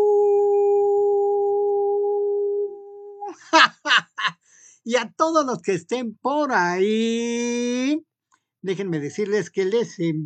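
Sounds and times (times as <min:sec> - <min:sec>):
person imitating a wolf howl: 0:00.0 - 0:03.4
laughter: 0:03.3 - 0:04.4
speech: 0:03.6 - 0:10.2.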